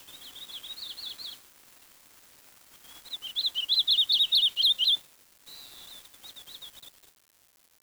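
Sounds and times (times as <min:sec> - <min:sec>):
bird twitter of fast high chirping notes: 0:00.1 - 0:01.4, 0:03.0 - 0:05.0.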